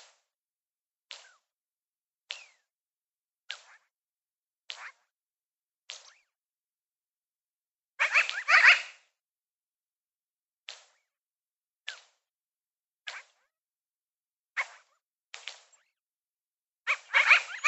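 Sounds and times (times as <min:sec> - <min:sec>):
magpie giving dry rasping calls: 0:08.0 - 0:09.0, 0:16.9 - 0:17.6.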